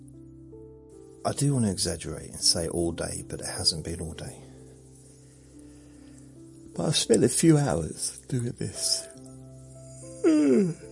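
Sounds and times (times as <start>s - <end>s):
speech: 1.2s - 4.5s, 6.8s - 9.1s, 10.2s - 10.9s
person yawning: 10.0s - 10.9s.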